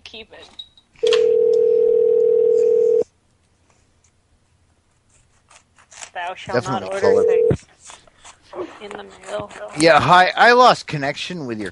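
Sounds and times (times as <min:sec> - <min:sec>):
speech: 0:00.1 - 0:01.3, 0:06.2 - 0:07.8, 0:08.6 - 0:11.7
telephone dial tone: 0:01.0 - 0:03.0, 0:07.0 - 0:07.6.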